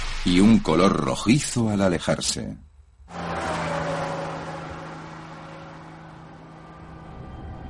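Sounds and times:
speech: 0.3s - 2.7s
car passing by with Doppler shift: 3.1s - 7.6s.

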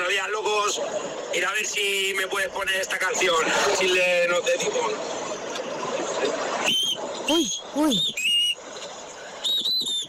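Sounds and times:
speech: 0.1s - 5.4s, 7.3s - 8.4s
shrill piercing whistle in a voice note: 6.6s - 8.6s, 9.4s - 10.0s.

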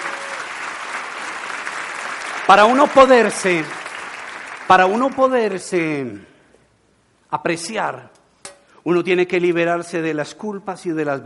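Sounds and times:
audience applauding: 0.0s - 5.4s
speech: 2.5s - 3.8s, 4.7s - 6.3s, 7.3s - 8.2s, 8.8s - 11.2s.

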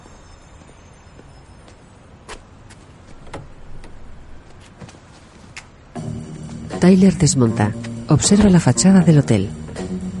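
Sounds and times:
SUV front passenger door unlatching and opening: 3.1s - 4.9s
speech: 6.8s - 9.6s.

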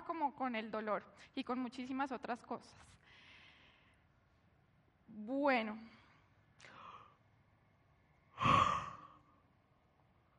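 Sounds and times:
speech: 0.2s - 3.2s, 5.1s - 6.0s
person yawning: 8.4s - 9.2s.

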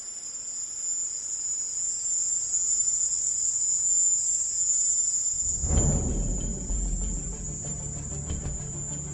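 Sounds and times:
insects chirping on a warm night in a house garden in Havana Cuba: 0.0s - 9.1s
low rumbling noise: 5.3s - 9.1s.

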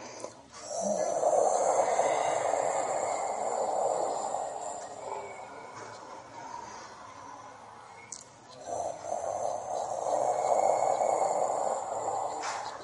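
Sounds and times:
voice imitating a tiger's roar with a breathy growling exhale: 0.6s - 6.3s, 8.6s - 12.8s.

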